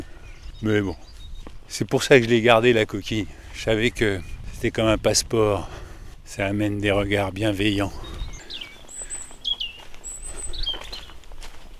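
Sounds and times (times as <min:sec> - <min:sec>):
small bird chirping: 0:00.2 - 0:01.6, 0:07.9 - 0:11.2
speech: 0:00.6 - 0:08.1.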